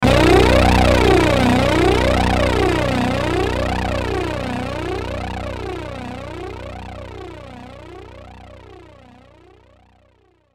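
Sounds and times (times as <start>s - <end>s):
flanged distorted sweeper transition accent: 0.0s - 7.8s.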